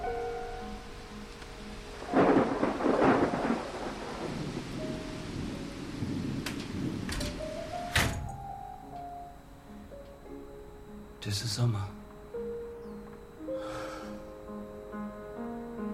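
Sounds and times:
steady rain during a thunderstorm: 0:00.0 - 0:12.6, 0:13.2 - 0:14.9
rumble of thunder: 0:02.0 - 0:08.4
speech: 0:11.3 - 0:12.0.

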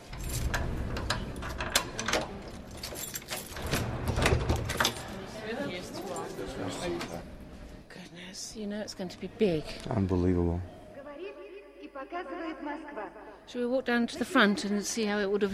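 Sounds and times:
heavy theatre doors swinging open with clunks, rattles and creaks: 0:00.0 - 0:07.6
speech: 0:08.8 - 0:10.8, 0:13.5 - 0:15.5.

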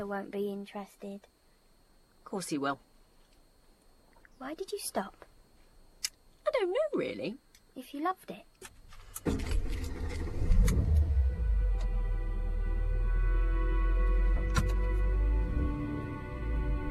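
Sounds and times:
speech: 0:00.0 - 0:01.4, 0:02.3 - 0:02.9, 0:04.4 - 0:05.3, 0:06.5 - 0:09.4
car engine starting and rumbling as it pulls away: 0:09.2 - 0:13.3, 0:14.0 - 0:16.8.

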